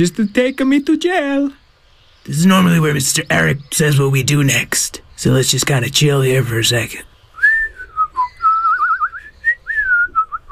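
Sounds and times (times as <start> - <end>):
speech: 0.0 - 1.6, 2.2 - 7.2
person whistling a short wavering tune: 7.4 - 10.5.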